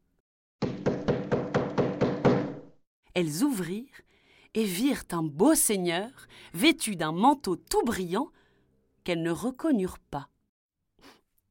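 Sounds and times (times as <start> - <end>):
knocking on a wooden castle door: 0.6 - 2.8
speech: 3.2 - 8.4, 9.0 - 10.3.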